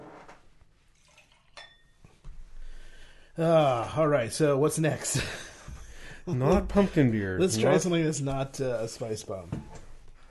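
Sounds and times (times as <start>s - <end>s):
glass being rinsed: 0.9s - 2.0s
glass clinking: 1.3s - 2.1s
speech: 3.4s - 5.5s, 6.3s - 9.8s.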